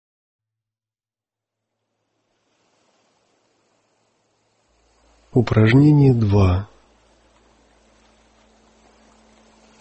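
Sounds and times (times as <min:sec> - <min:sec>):
faint low hum: 0:01.8 - 0:09.8
sea surf waves: 0:02.0 - 0:09.8
speech: 0:05.4 - 0:06.7.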